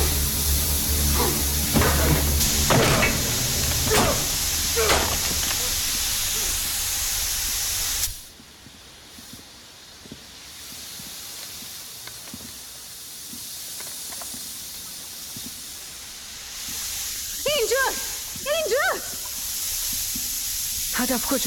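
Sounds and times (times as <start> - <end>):
steam hissing from a vent: 0.0 - 21.4
speech: 21.1 - 21.4.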